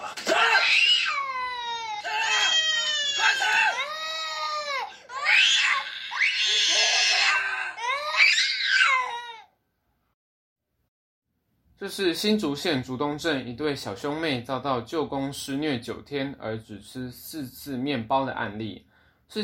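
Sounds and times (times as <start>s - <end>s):
young child crying and wailing: 0.5s - 9.5s
speech: 11.8s - 19.4s.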